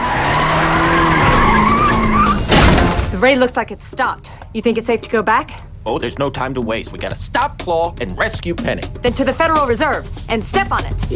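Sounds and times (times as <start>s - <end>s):
car tires screeching as a vehicle skids and spins to a stop: 0.0s - 3.0s
speech: 3.2s - 11.1s.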